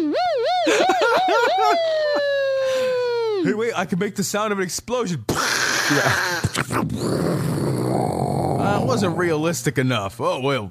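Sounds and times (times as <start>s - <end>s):
man's voice imitating a police siren: 0.0s - 3.5s
speech: 3.4s - 10.7s.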